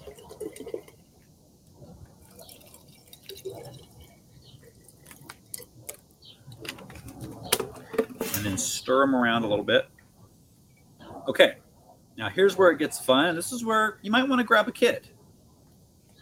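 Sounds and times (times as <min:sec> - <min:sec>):
water poured into jars of soil: 0:00.0 - 0:01.1, 0:02.1 - 0:06.0
speech: 0:08.6 - 0:09.9, 0:11.3 - 0:11.6, 0:12.2 - 0:15.1.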